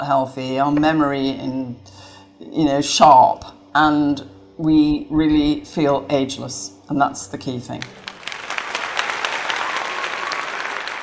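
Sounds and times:
speech: 0.0 - 8.0
round of applause from many hands: 7.8 - 11.0.

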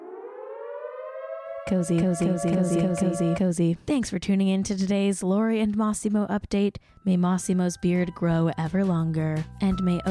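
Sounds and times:
alarm siren tone rising in pitch: 0.0 - 3.5
loud choppy warbling alarm pulse: 0.0 - 3.6
speech: 1.7 - 10.0.

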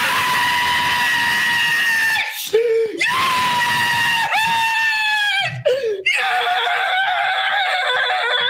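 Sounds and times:
man screaming viscerally: 0.0 - 8.4
man's gasping breaths: 2.3 - 3.0, 5.5 - 6.1.

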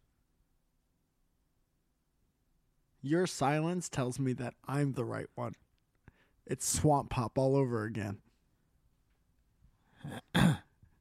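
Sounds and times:
speech: 3.0 - 5.7, 6.5 - 8.2, 10.0 - 10.6
person coughing: 10.0 - 10.8.

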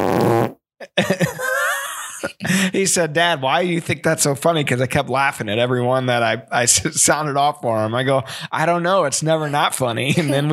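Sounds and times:
soundboard fart sound effects: 0.0 - 0.6
laughter: 0.8 - 2.8, 9.3 - 10.5
speech: 0.9 - 1.3, 2.7 - 10.5.

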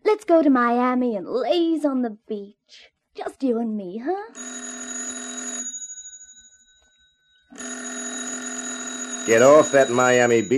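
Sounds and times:
speech: 0.2 - 5.2, 9.3 - 10.5
bell-type telephone ringing: 4.3 - 10.5.

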